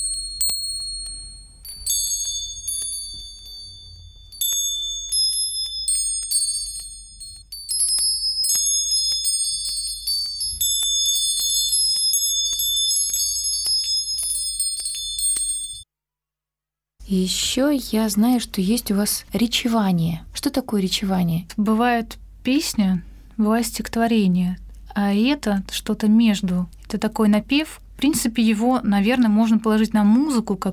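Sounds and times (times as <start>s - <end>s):
small collectible handbells ringing: 0.0s - 15.8s
speech: 17.1s - 30.7s.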